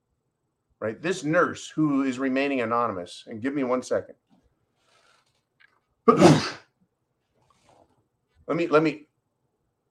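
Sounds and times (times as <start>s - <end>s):
speech: 0.8s - 4.2s, 6.1s - 6.6s, 8.5s - 9.1s
person sneezing: 6.1s - 6.8s.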